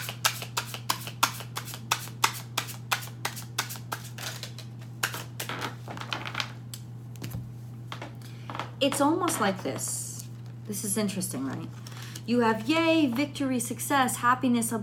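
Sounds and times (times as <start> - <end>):
tarot cards being shuffled by hand: 0.0 - 6.3
low steady hum: 0.0 - 14.8
speech: 8.8 - 10.0, 10.7 - 14.8.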